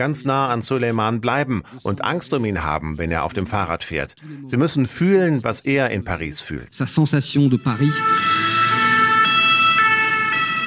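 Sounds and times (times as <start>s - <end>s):
speech: 0.0s - 8.5s
two-tone emergency vehicle siren in Paris city traffic: 7.3s - 10.6s.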